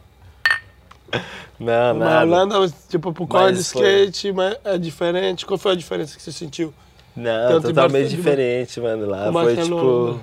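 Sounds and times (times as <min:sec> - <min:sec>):
glasses clinking in a toast: 0:00.4 - 0:00.8
speech: 0:01.2 - 0:10.2.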